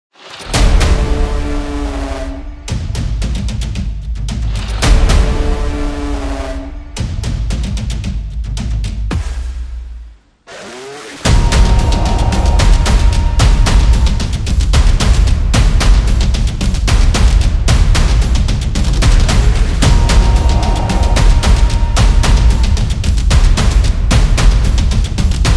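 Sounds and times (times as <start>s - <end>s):
cinematic drums: 0.2s - 10.3s, 11.2s - 25.5s.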